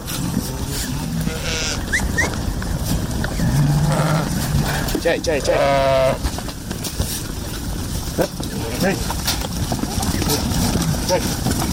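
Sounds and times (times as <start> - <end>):
outdoor noise on a mountain pasture: 0.0 - 11.7
sheep bleating on a mountain pasture: 0.6 - 2.1, 5.3 - 6.3
speech: 5.0 - 6.3, 8.2 - 9.2, 11.1 - 11.7.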